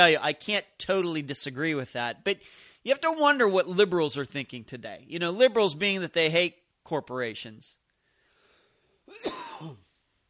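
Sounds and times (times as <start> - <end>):
speech: 0.0 - 7.8, 9.1 - 9.8
raspy cough from a person with allergies: 9.1 - 9.9.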